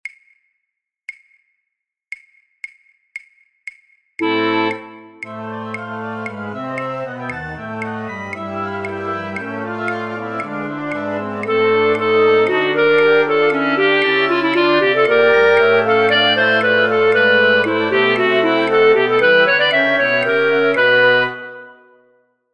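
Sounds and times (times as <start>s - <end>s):
flute orchestra playing: 4.2s - 21.9s.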